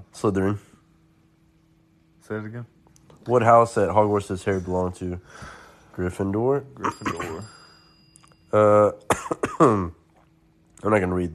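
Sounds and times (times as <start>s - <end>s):
speech: 0.2s - 0.7s, 2.3s - 7.6s, 8.5s - 10.0s, 10.8s - 11.3s
person clearing throat: 6.8s - 7.5s, 9.0s - 10.0s
rough hacking coughs: 6.8s - 7.6s, 9.0s - 10.0s.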